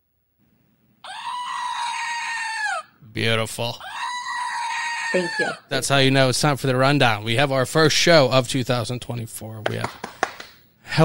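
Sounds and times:
screaming goat toy letting out a loud shrill scream: 1.0s - 2.9s, 3.8s - 5.7s
speech: 3.2s - 4.0s, 5.1s - 10.1s.

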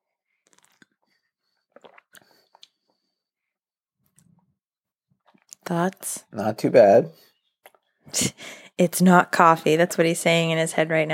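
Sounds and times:
lip smacks: 0.4s - 3.0s
person sipping matcha tea from a cup: 0.4s - 3.0s
speech: 5.7s - 7.3s, 8.1s - 11.1s.

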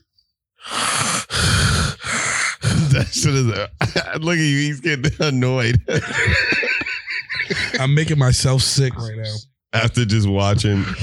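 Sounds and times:
heavy rough breathing: 0.6s - 3.2s
laughter: 2.7s - 8.6s
speech: 3.0s - 6.7s, 7.5s - 11.0s.

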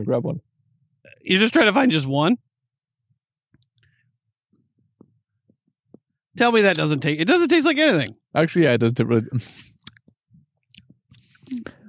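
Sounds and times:
speech: 0.0s - 2.5s, 6.4s - 9.8s, 11.5s - 11.8s
mouth clicks: 6.6s - 8.2s, 9.6s - 11.8s
crunchy chewing of a barbecue-seasoned edible worm: 9.7s - 11.8s.

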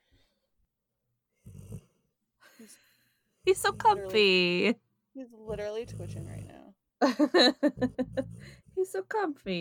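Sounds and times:
dog snoring quietly: 1.4s - 2.1s, 3.4s - 4.8s, 5.4s - 6.8s, 7.7s - 8.8s
speech: 2.6s - 9.5s
laughter: 7.0s - 8.4s.

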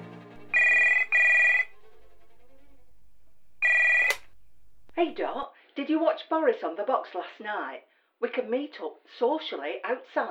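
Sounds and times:
telephone double ring: 0.4s - 5.4s
speech: 5.0s - 10.2s.

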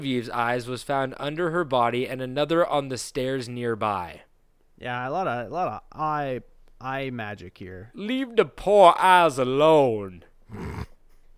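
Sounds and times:
speech: 0.0s - 10.9s
voice imitating a growling dog: 10.5s - 11.0s.

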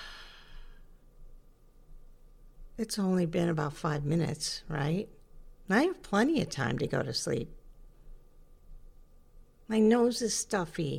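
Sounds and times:
slow breathing in and out: 0.0s - 1.0s
speech: 2.8s - 7.6s, 9.7s - 10.9s.

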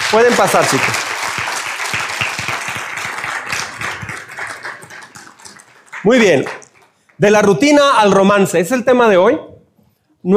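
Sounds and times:
audience applause: 0.0s - 7.2s
speech: 0.1s - 1.1s, 6.0s - 6.6s, 7.2s - 9.5s.

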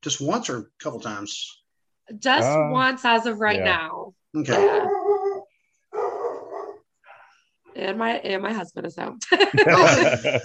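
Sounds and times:
speech: 0.0s - 5.1s, 7.8s - 10.4s
dog barking: 4.5s - 6.9s
laughter: 9.2s - 10.4s.

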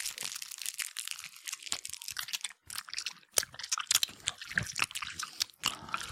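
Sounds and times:
crisp plastic wrapper crinkling: 0.0s - 3.8s
wet crunchy chewing into microphone: 0.0s - 6.1s.

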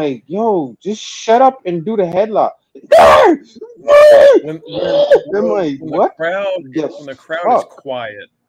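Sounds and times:
speech: 0.0s - 8.4s
person vocally imitating a wrestler's high-pitched screams: 2.8s - 5.5s
person making grunting and whining noises: 2.8s - 5.7s.

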